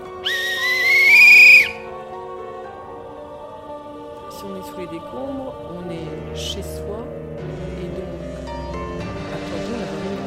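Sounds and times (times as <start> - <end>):
emergency whistle blast: 0.1 - 1.8
speech: 4.8 - 8.0.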